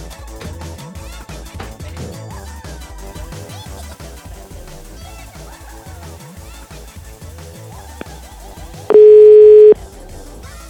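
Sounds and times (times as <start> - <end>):
telephone dial tone while calling: 8.9 - 9.8.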